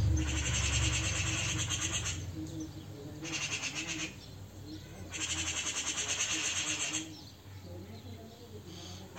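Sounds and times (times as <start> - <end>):
Eurasian magpie Pica pica giving harsh rattling chatter: 0.1 - 2.4, 3.1 - 7.5.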